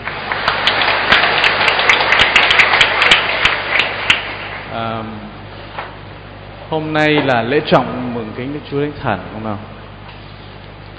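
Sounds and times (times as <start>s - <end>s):
crowd applauding: 0.0s - 4.7s
speech: 4.8s - 5.4s, 6.7s - 9.7s.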